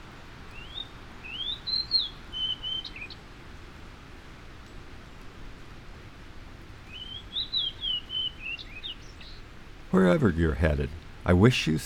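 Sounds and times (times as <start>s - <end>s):
steady background hiss: 0.0s - 11.8s
male fox sparrow singing from shrubs: 0.6s - 3.2s, 6.9s - 9.4s
speech: 10.0s - 11.8s.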